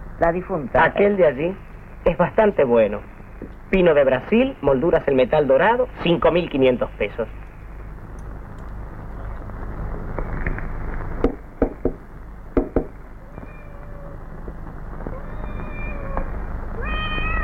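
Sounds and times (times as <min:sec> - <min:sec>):
steady low rumble: 0:00.0 - 0:17.4
speech: 0:00.2 - 0:07.4
hollow knocks: 0:12.6 - 0:12.9
cats meowing inside a coffin: 0:13.2 - 0:14.3, 0:15.0 - 0:17.4.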